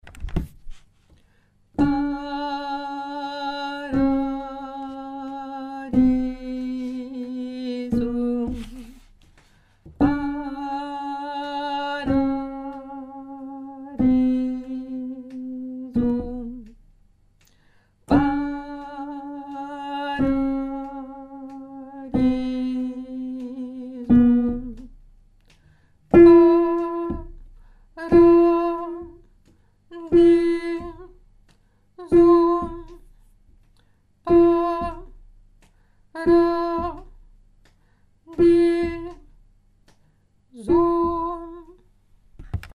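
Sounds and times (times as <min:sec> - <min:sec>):
alto voice singing letter G: 0:01.8 - 0:09.1, 0:10.0 - 0:16.8, 0:18.1 - 0:24.9, 0:26.1 - 0:27.4, 0:28.0 - 0:29.2, 0:29.9 - 0:31.2, 0:32.0 - 0:33.0, 0:34.3 - 0:35.2, 0:36.2 - 0:37.1, 0:38.3 - 0:39.3, 0:40.6 - 0:41.8.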